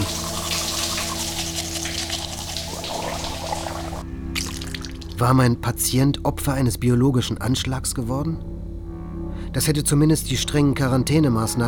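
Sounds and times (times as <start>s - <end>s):
shower water running: 0.0s - 5.2s
speech: 5.2s - 8.5s, 9.5s - 11.6s.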